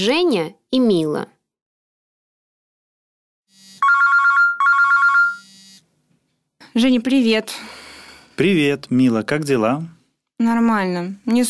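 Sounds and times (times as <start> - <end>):
speech: 0.0 - 1.4, 6.8 - 7.8, 8.4 - 11.4
telephone ringing with trilling electronic bursts: 3.5 - 5.8.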